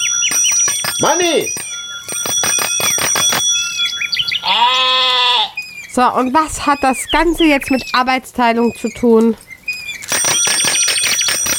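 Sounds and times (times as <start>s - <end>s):
small bell ringing rapidly: 0.0s - 4.5s, 10.0s - 11.5s
speech: 1.0s - 1.6s, 4.5s - 5.3s, 6.0s - 9.4s.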